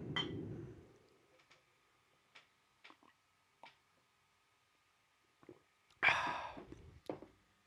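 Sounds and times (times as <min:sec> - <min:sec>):
coffee mug clinks and taps: 0:00.2 - 0:00.4
breathy exhale: 0:06.0 - 0:06.7.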